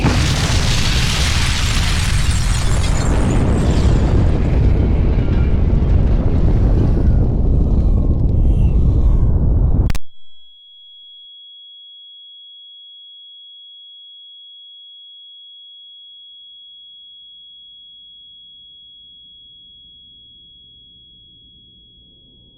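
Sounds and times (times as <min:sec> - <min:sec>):
warhead detonating seven kilometres above a town: 0:00.0 - 0:10.4.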